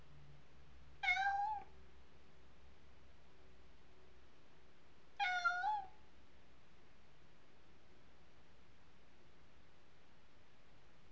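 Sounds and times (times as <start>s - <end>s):
faint low hum: 0.0s - 11.1s
cat meowing: 1.0s - 1.7s, 5.2s - 6.0s.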